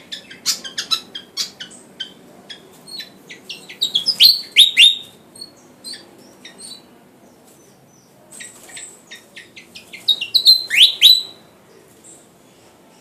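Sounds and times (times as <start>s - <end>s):
Sikatan Jawa flycatcher singing vigorously with loud downslurred and piercing whistles: 2.9s - 6.0s, 10.1s - 11.4s.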